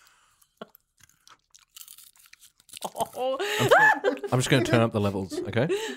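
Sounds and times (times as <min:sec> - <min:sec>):
nuts crunched and chewed during ASMR nut eating: 0:00.4 - 0:03.2
peanut shells cracking: 0:00.6 - 0:03.3
speech: 0:02.9 - 0:05.9
laughter: 0:03.1 - 0:05.9.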